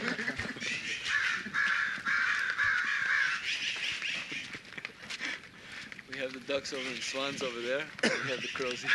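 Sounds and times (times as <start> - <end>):
faint outdoor noise: 0.0 - 8.9
crow cawing: 0.7 - 4.5, 8.0 - 8.9.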